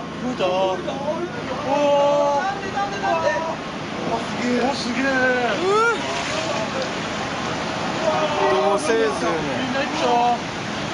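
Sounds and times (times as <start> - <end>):
tsunami seawater surging through a harbor: 0.0 - 10.9.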